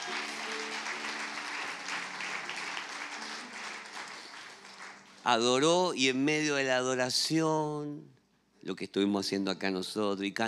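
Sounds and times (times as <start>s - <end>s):
large crowd applauding: 0.0s - 5.8s
speech: 5.2s - 10.4s.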